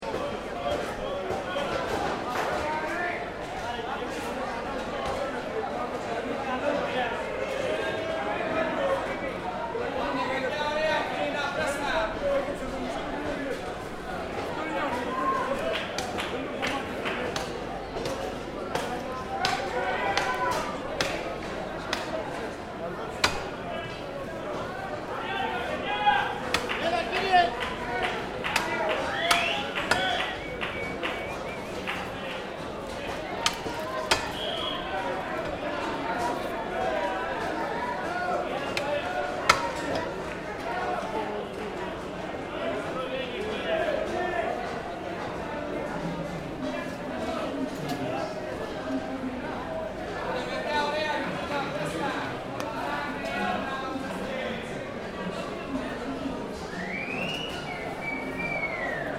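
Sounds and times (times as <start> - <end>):
dense crowd chatting and shouting at a meat market in Athens Greece: 0.0 - 59.1
meat being hacked and cut with a machete: 23.2 - 23.5, 33.4 - 34.5.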